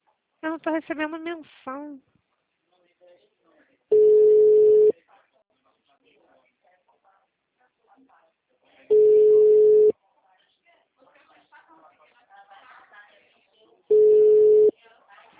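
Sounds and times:
speech: 0.4 - 2.2
telephone tone beeps after a dropped call: 3.9 - 4.9, 8.9 - 9.9, 13.9 - 14.7.

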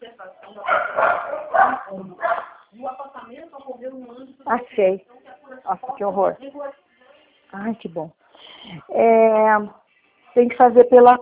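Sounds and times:
small dogs barking: 0.6 - 2.6
speech: 4.8 - 5.1, 5.7 - 6.6, 7.5 - 9.8, 10.4 - 11.2.

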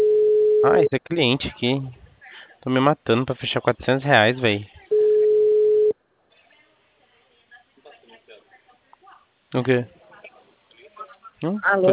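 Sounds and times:
telephone busy tone after a dropped call: 0.0 - 0.9, 4.9 - 5.9
speech: 0.6 - 2.0, 2.6 - 4.8, 9.5 - 10.0, 11.4 - 11.9.

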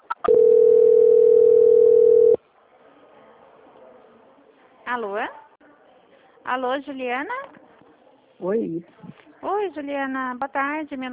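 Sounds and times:
telephone tone while a call is transferred: 0.2 - 2.4
speech: 6.5 - 7.6, 8.4 - 11.1.

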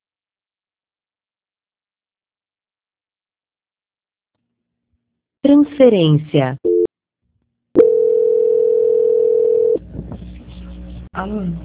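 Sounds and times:
speech: 5.4 - 6.8, 11.2 - 11.6
telephone dial tone after a call is cut off: 7.8 - 9.8.

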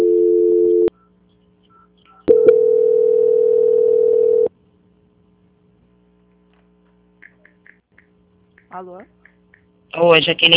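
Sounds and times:
telephone line tones during a call transfer: 0.0 - 1.0, 2.2 - 4.5
speech: 8.8 - 9.2, 10.0 - 10.5.

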